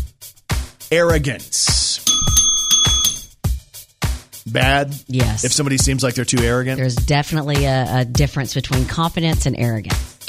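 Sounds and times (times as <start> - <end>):
speech: 0.9 - 1.8, 4.5 - 10.1
bell struck with bright metallic ring: 2.1 - 3.3.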